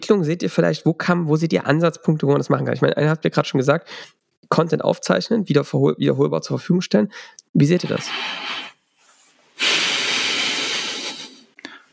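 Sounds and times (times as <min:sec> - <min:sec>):
speech: 0:00.1 - 0:08.6
heavy breathing into the microphone: 0:07.1 - 0:11.9.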